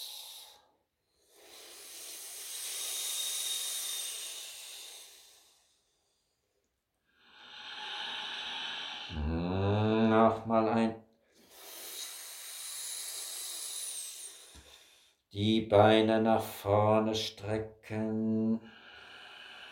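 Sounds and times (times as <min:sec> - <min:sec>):
hissing breaths drawn in and let out through a curled tongue: 0:00.0 - 0:06.3, 0:07.2 - 0:09.6, 0:11.4 - 0:15.2, 0:18.7 - 0:19.7
speech: 0:10.4 - 0:11.0, 0:15.3 - 0:18.8.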